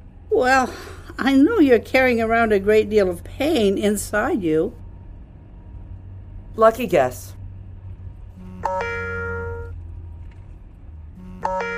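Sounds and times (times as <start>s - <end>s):
low steady rumble of noise: 0.0s - 11.4s
speech: 0.3s - 4.8s, 6.6s - 7.4s
telephone ringing with electronic trills: 8.6s - 9.8s, 11.4s - 11.7s.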